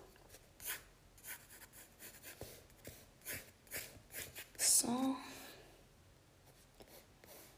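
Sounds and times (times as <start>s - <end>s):
pencil scratching on paper while a cloak is sketched: 0.6s - 4.6s, 6.5s - 7.5s.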